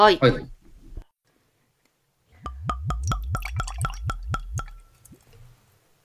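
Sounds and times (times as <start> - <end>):
speech: 0.0 - 0.6
sake glugging from a bottle into a glass: 2.5 - 5.4.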